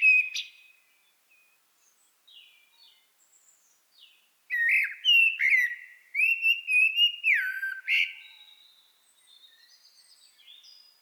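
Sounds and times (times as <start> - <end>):
common blackbird Turdus merula singing mellow fluted whistles: 0.0 - 0.7, 4.5 - 8.3.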